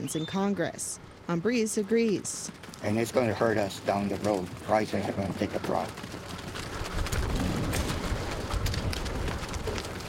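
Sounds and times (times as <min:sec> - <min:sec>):
speech: 0:00.1 - 0:06.3
cattle jostling and hurtling through a gate: 0:02.2 - 0:10.0.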